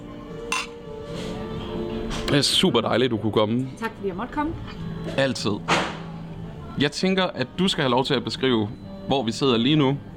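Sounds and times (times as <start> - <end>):
glasses clinking in a toast: 0.5 - 0.8
speech: 2.3 - 5.9, 6.8 - 10.1.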